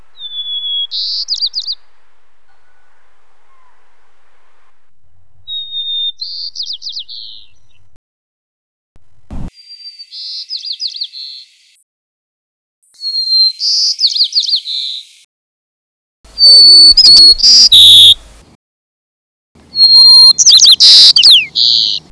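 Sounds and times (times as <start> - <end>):
white-crowned sparrow song series: 0.2 - 1.8, 5.5 - 8.0, 9.6 - 11.6, 12.9 - 15.3, 16.4 - 18.2, 19.8 - 22.1.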